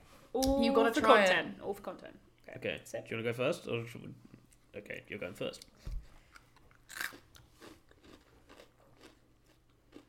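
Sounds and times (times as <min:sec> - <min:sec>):
speech: 0:00.4 - 0:06.0
irregular chewing crackles of a wasabi pea: 0:06.3 - 0:10.0
crunch of biting a wasabi pea: 0:06.7 - 0:10.0.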